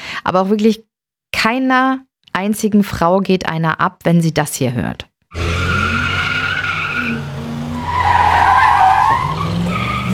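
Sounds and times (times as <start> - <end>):
speech: 0.2 - 5.5
car engine roar accelerating hard from a traffic light: 5.3 - 10.1
car tires spinning and squealing accelerating from a traffic light: 5.3 - 10.1.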